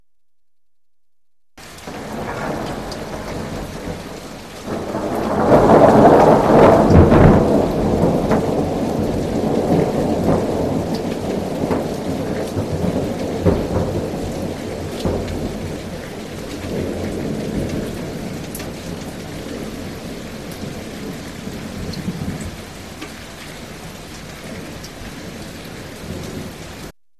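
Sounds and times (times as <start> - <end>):
thunder: 1.8 - 22.7.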